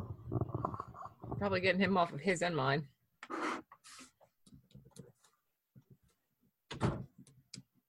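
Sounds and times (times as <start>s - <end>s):
speech: 1.4s - 2.9s
door pushed shut with a solid thunk: 6.7s - 7.1s.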